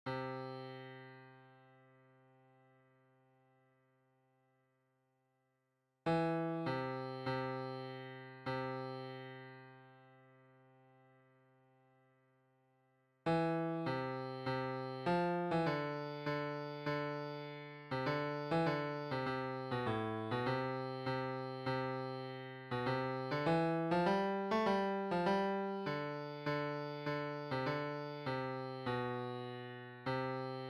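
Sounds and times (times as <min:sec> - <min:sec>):
tenor MIDI piano: 0:06.1 - 0:09.6, 0:13.3 - 0:30.6.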